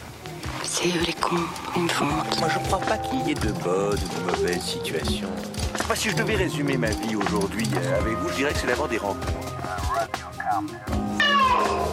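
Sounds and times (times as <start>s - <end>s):
speech: 0.7s - 11.9s
person imitating cat meows: 11.1s - 11.9s.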